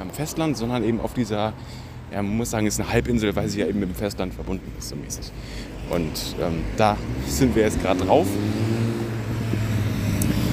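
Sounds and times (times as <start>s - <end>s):
speech: 0.2s - 9.0s
motorcycle passing by on the island of Lindau on Lake Constance: 5.8s - 10.5s.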